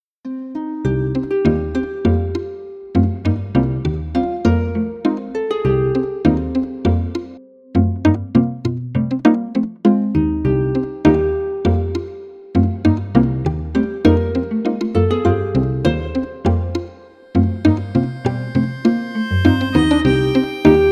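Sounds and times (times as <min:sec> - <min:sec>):
harp: 0:00.3 - 0:20.9
plucked string quartet: 0:00.5 - 0:20.9
melodica: 0:17.2 - 0:20.9.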